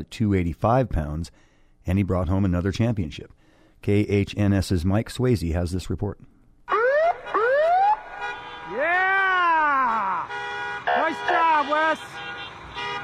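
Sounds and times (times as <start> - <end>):
speech: 0.0 - 6.3, 11.9 - 12.3
car horns honking in celebration: 6.7 - 13.0
fire truck sirens wailing through a small coastal Alaskan town: 6.7 - 13.0
people cheering and calling out: 8.6 - 10.3.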